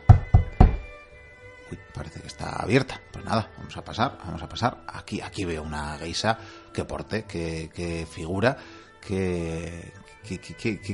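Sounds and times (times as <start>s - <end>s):
firm knocking on a door with a hollow thud: 0.0s - 0.9s
speech: 1.7s - 10.9s.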